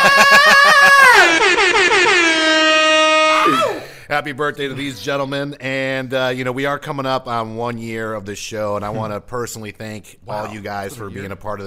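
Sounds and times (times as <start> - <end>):
loud air horn sound effect blasting: 1.1 - 3.8
speech: 4.1 - 11.6.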